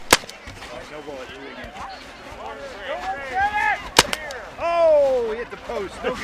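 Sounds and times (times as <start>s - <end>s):
loud cracks: 0.0s - 0.4s, 4.0s - 4.4s
paintball guns firing at targets: 0.0s - 0.4s, 4.0s - 4.4s
chattering voices: 0.0s - 6.2s.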